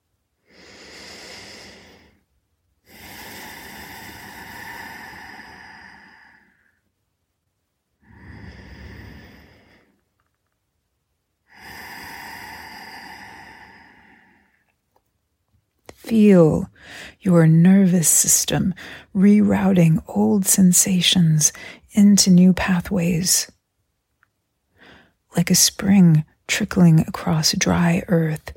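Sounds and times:
slow deep meditation breathing: 0.4s - 6.9s, 8.0s - 10.4s, 11.5s - 14.8s, 16.7s - 17.2s, 24.7s - 25.2s
speech: 16.1s - 23.6s, 25.4s - 28.5s.

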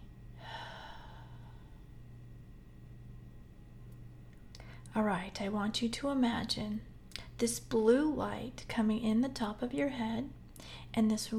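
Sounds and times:
low hum: 0.0s - 9.7s
deep breath exhaled slowly during a guided relaxation: 0.4s - 1.8s
speech: 5.0s - 11.3s.

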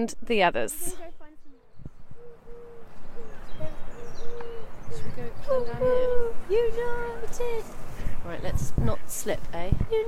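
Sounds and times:
speech: 0.0s - 1.1s, 5.0s - 10.0s
steady outdoor noise: 0.0s - 10.0s
faint voices murmuring: 0.9s - 10.0s
feral pigeons cooing: 1.5s - 7.3s.

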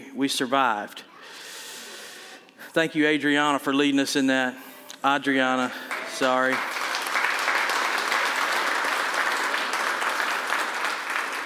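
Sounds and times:
speech: 0.2s - 1.4s, 2.8s - 6.8s
crowd applauding: 5.8s - 11.4s.

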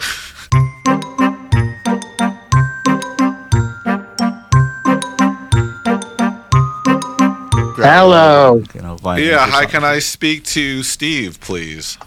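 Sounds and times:
phone ringtone for an outgoing call: 0.5s - 8.4s
speech: 7.8s - 12.0s.

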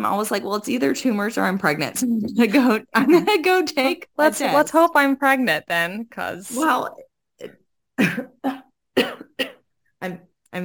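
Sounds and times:
speech: 0.0s - 9.1s, 10.0s - 10.6s
dry raspy coughs: 8.0s - 9.7s.

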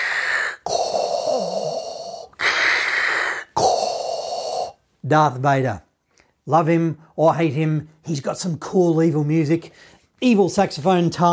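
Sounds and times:
person imitating heavy rasping breathing: 0.0s - 4.8s
speech: 5.1s - 11.3s.

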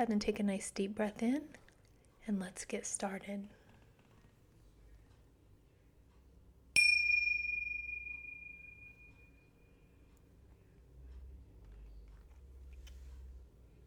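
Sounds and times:
speech: 0.0s - 1.6s, 2.3s - 3.6s
low hum: 0.0s - 13.8s
meditation bell struck at the start of a meditation session: 6.8s - 9.8s.

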